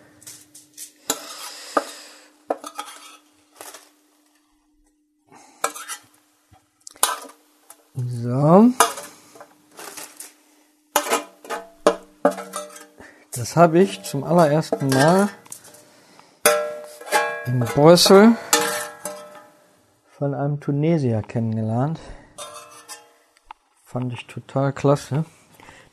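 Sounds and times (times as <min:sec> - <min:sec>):
pan and utensils clattering as paprika is stirred into onions in a frying pan: 0:00.0 - 0:04.0, 0:05.6 - 0:06.2, 0:06.9 - 0:07.4, 0:08.7 - 0:10.3, 0:11.0 - 0:15.9, 0:16.5 - 0:19.7, 0:22.4 - 0:23.2
speech: 0:08.0 - 0:08.8, 0:13.5 - 0:15.4, 0:17.5 - 0:18.4, 0:20.2 - 0:22.2, 0:23.9 - 0:25.4.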